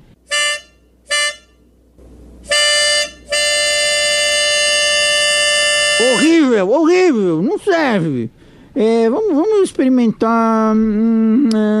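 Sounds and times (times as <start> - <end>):
shrill reedy whistle blowing: 0.3 - 1.6, 2.5 - 6.3
speech: 6.2 - 11.7.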